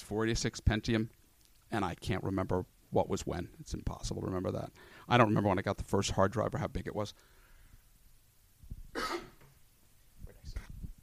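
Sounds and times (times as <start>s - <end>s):
speech: 0.1s - 7.4s
person breathing: 4.8s - 5.1s, 7.2s - 7.9s
person coughing: 8.9s - 9.4s
rasping throat clearing: 9.0s - 9.4s.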